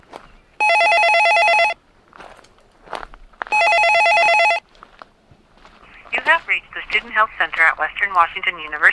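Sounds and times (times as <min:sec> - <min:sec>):
footsteps: 0:00.0 - 0:00.4, 0:02.1 - 0:03.7, 0:04.6 - 0:08.9
phone line ringing for an outgoing call: 0:00.6 - 0:01.8, 0:03.5 - 0:04.6
speech: 0:07.0 - 0:08.9.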